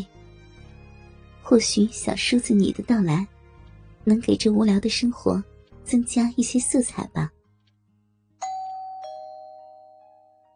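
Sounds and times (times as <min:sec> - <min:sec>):
speech: 0:01.5 - 0:03.3, 0:04.0 - 0:07.4
doorbell two-note ding-dong chime: 0:08.4 - 0:10.5.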